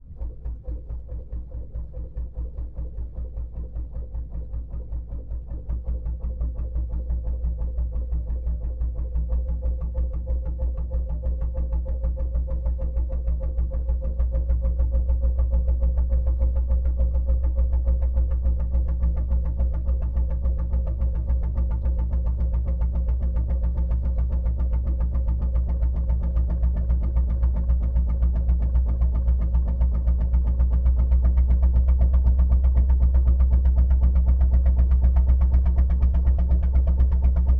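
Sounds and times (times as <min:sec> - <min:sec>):
fishing trawler engine accelerating from slow to fast: 0:00.0 - 0:37.5.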